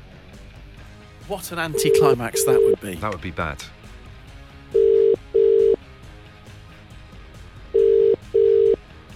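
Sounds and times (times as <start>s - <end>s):
speech: 1.3s - 3.8s
telephone ringback tone on an outgoing call: 1.7s - 2.8s, 4.8s - 5.8s, 7.8s - 8.8s.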